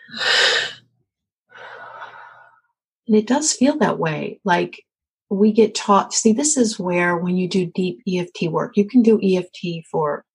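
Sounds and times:
deep breath taken during a guided tapping exercise for anxiety relief: 1.5 - 2.8
speech: 3.1 - 10.3.

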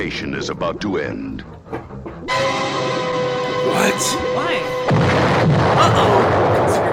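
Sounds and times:
speech: 0.0 - 3.0, 3.6 - 6.9
explosion sound effect in movie trailer: 4.8 - 6.9.

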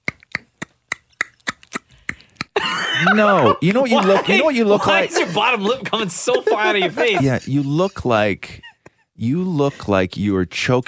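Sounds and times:
laughter: 2.6 - 7.8
speech: 2.6 - 8.6, 9.2 - 10.8
hands clapping: 3.9 - 4.4.

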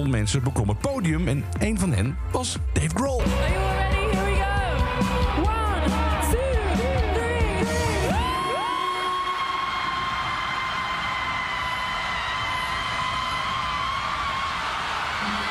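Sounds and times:
speech: 0.0 - 4.2
concert crowd yelling and screaming: 3.3 - 15.4.

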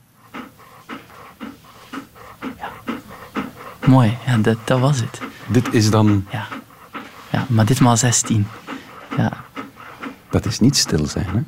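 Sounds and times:
dogs barking: 0.0 - 11.4
speech: 3.9 - 6.6, 7.4 - 9.4, 10.4 - 11.4.

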